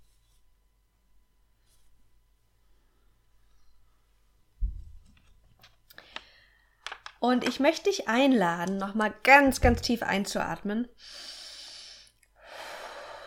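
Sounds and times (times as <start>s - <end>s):
soft thump: 4.6s - 5.0s
speech: 7.2s - 11.3s.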